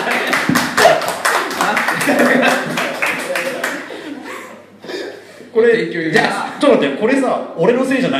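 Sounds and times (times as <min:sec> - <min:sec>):
audience applause: 0:00.0 - 0:04.0
audience chattering: 0:00.0 - 0:05.5
audience chuckling: 0:01.4 - 0:05.5
speech: 0:05.6 - 0:08.1.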